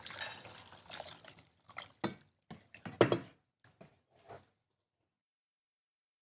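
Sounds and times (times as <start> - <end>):
water pouring into a cooking pot holding tomato sauce: 0.0 - 2.4.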